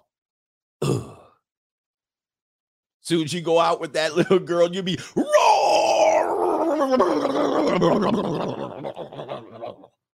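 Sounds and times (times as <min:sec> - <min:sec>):
speech: 0:03.1 - 0:05.4, 0:06.8 - 0:09.2
man imitating a big animal's growling roar: 0:05.2 - 0:08.5
laughter: 0:06.7 - 0:10.0.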